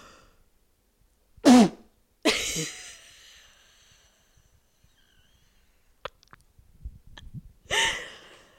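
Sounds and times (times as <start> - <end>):
person sneezing: 1.4 - 1.9.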